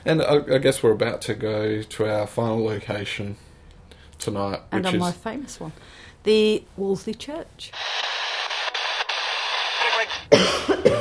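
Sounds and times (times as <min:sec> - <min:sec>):
speech: 0:00.0 - 0:03.5, 0:04.2 - 0:08.2
steady hiss: 0:00.0 - 0:10.8
person coughing from choking on dust inside an old church building: 0:10.3 - 0:11.0.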